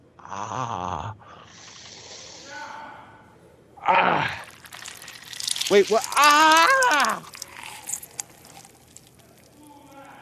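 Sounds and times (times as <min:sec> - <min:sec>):
speech: 0:00.3 - 0:00.9, 0:05.7 - 0:07.2
lime juice poured onto a person: 0:04.4 - 0:10.1.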